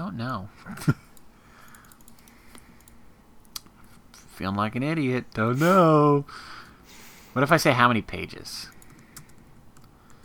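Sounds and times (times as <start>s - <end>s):
speech: 0.1s - 1.1s, 4.4s - 6.6s, 7.4s - 8.8s
computer mouse or keys clicking during an image search: 1.6s - 3.7s, 8.7s - 10.2s.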